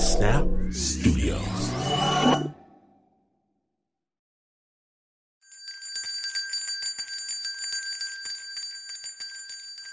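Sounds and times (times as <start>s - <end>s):
speech: 0.1s - 2.5s
bell ringing: 5.5s - 9.9s.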